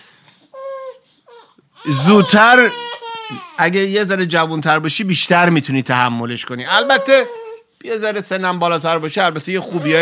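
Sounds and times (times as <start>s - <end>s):
baby fussing and babbling: 0.5s - 3.6s, 6.7s - 7.7s, 9.6s - 10.0s
speech: 1.8s - 10.0s.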